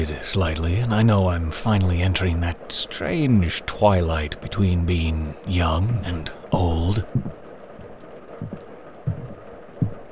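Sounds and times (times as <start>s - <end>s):
speech: 0.0s - 7.2s
footsteps: 7.1s - 10.1s.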